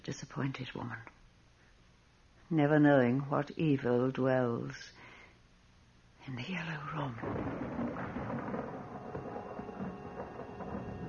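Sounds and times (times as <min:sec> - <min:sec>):
speech: 0:00.0 - 0:01.2, 0:02.5 - 0:05.0, 0:06.3 - 0:07.9
low continuous rumble of thunder before a storm: 0:07.1 - 0:11.0.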